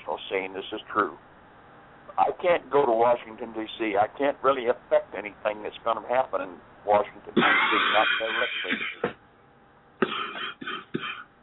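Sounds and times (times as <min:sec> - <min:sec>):
speech: 0:00.3 - 0:01.3, 0:02.1 - 0:09.2
heavy harsh coughs: 0:07.4 - 0:09.2, 0:10.0 - 0:11.3.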